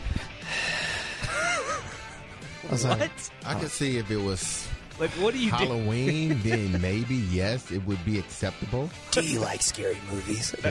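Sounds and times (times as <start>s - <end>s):
person imitating heavy raspy breathing into a phone during a call: 0.0s - 2.6s
laughter: 1.2s - 3.7s, 5.2s - 7.3s
speech: 2.7s - 10.7s.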